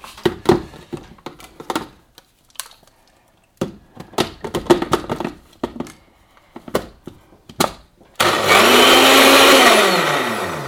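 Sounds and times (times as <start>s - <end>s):
blender whipping hot coffee into a frothy drink: 8.2s - 10.6s.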